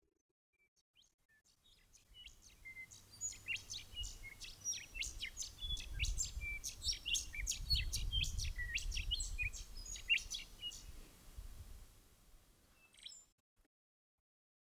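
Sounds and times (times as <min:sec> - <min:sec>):
Willie wagtail song of sharp chirps and short whistles: 0:02.2 - 0:10.9.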